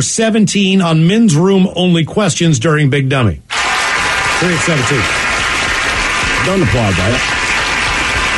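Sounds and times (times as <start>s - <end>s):
speech: 0.0s - 3.6s, 4.4s - 5.2s, 6.4s - 7.4s
applause: 3.5s - 8.3s.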